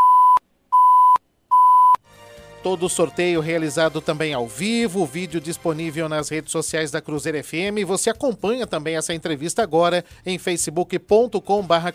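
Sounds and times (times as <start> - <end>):
electronic time warning beeps in a live radio interview: 0.0 - 2.0
speech: 2.6 - 11.9.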